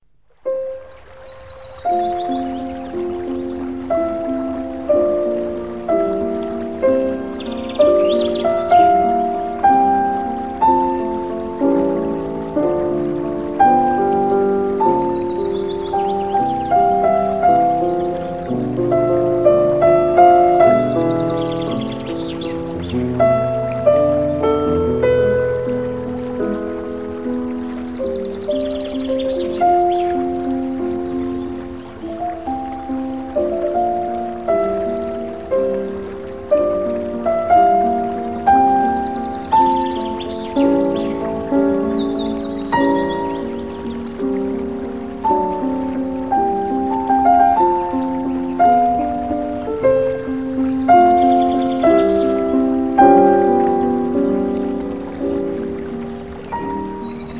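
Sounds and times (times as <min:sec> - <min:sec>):
sleep music from ZTE Nubia Z5S Mini phone user interface: 0:00.4 - 0:57.3.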